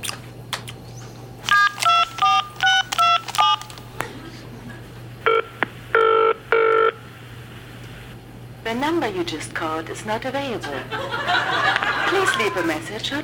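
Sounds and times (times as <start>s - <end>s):
mobile phone electronic call tones: 1.5s - 3.7s, 5.2s - 7.0s
mobile phone keypad beeps: 1.5s - 3.8s
laughter: 4.0s - 5.0s, 10.5s - 13.0s
speech: 8.9s - 13.2s.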